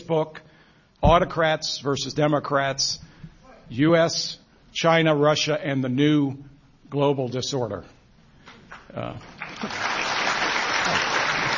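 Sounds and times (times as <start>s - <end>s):
speech: 0.1s - 3.1s, 3.7s - 8.0s, 8.9s - 9.8s
audience applause at a book discussion event: 9.2s - 11.5s.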